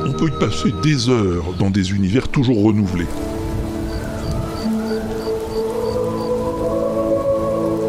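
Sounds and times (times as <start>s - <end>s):
speech: 0.2s - 3.3s
steady dense rain on a stormy night: 2.5s - 7.8s.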